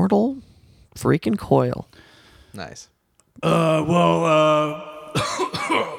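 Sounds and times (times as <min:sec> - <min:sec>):
speech: 0:00.0 - 0:05.9
drawn-out voiced groan: 0:03.4 - 0:05.9
harsh raspy coughs: 0:05.0 - 0:05.9.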